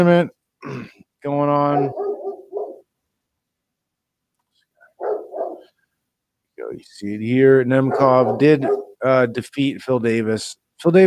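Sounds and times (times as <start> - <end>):
speech: 0.0 - 2.1, 6.7 - 11.0
dog barking at squirrels: 1.7 - 2.9, 5.0 - 5.8, 7.8 - 9.0.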